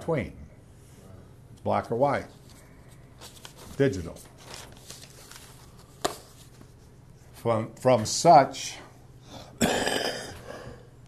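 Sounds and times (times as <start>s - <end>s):
speech: 0.0s - 0.4s, 1.6s - 2.4s, 3.8s - 4.3s, 7.4s - 8.8s
cough into the hand: 9.6s - 10.4s.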